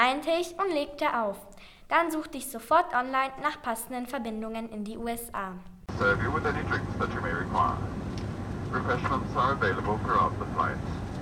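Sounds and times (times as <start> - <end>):
speech: 0.1 - 8.0, 8.7 - 11.0
Lufthansa airplane jet engine roar in flight to New York: 5.9 - 11.2.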